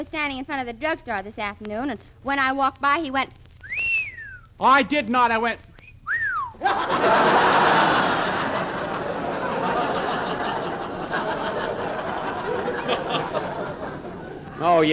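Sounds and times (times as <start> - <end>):
speech: 0.0 - 3.4, 4.6 - 5.7, 6.6 - 7.7, 14.6 - 14.9
wolf whistle sliding downward in pitch: 3.6 - 4.6, 5.7 - 6.6
large crowd laughing loudly: 6.5 - 14.9.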